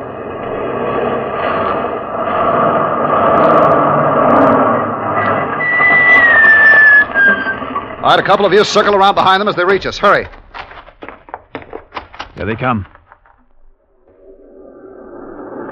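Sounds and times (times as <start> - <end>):
high drawn-out whine of truck swerving hard across road: 0.0 - 9.4, 13.7 - 15.7
heavy truck engine roaring: 0.0 - 10.4
speech: 8.1 - 10.4, 12.4 - 12.9.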